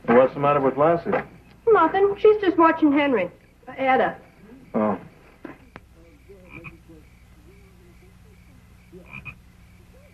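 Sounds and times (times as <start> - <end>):
frogs croaking in a barn: 0.0 - 10.1
speech: 0.3 - 5.1.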